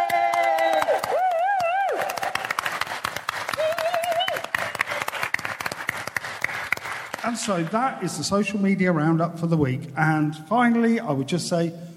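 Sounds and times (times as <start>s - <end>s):
whoops and high whistling cheers: 0.0s - 2.3s, 3.6s - 4.5s
crowd applauding loudly: 0.0s - 7.9s
speech: 7.3s - 11.9s.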